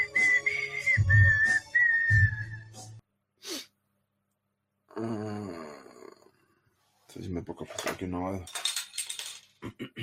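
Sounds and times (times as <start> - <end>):
man whistling a wavering melody: 0.0 - 3.0
short sharp breath or hiss: 3.4 - 3.8
deep breathy grunts: 4.9 - 6.5
speech: 7.4 - 8.6.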